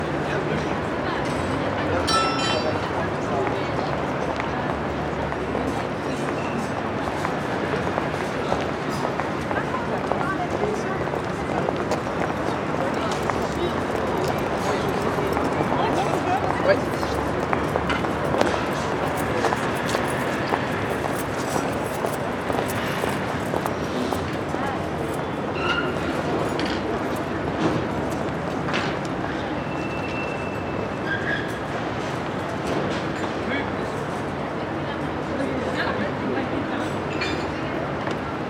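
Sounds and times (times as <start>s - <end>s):
pedestrian street ambience in France: 0.0s - 38.4s.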